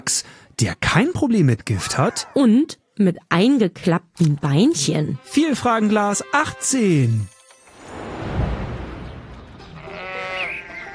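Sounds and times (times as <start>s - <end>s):
speech: 0.0s - 7.4s
sheep bleating loudly: 9.8s - 10.9s.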